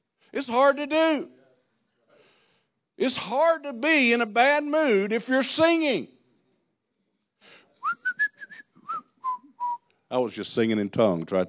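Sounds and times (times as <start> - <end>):
speech: 0.3 - 1.4, 3.0 - 6.2, 10.1 - 11.4
man whistling a short lively tune: 7.8 - 9.9.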